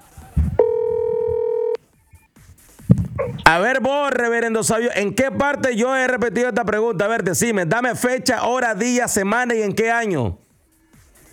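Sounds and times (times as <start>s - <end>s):
telephone ringback tone while calling someone: 0.6s - 1.8s
speech: 3.5s - 10.4s.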